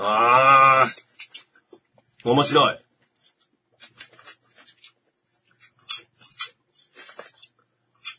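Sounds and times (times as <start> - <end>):
speech: 2.2 - 2.8
crunchy coconut curry-flavoured snack being chewed: 3.1 - 8.1.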